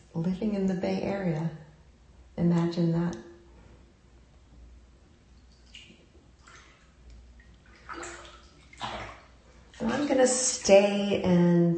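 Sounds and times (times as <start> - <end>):
speech: 0.2 - 1.6, 2.4 - 3.3, 9.8 - 11.7
running water splashing and trickling during washing: 5.5 - 10.9.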